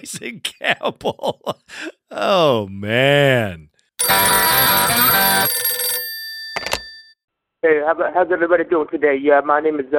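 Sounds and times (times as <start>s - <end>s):
speech: 0.0s - 5.6s, 7.6s - 9.9s
telephone ringing for an incoming call: 4.0s - 7.2s.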